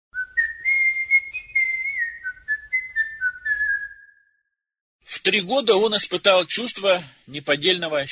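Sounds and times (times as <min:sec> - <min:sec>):
person whistling a light wandering melody: 0:00.2 - 0:04.4
speech: 0:05.2 - 0:08.1.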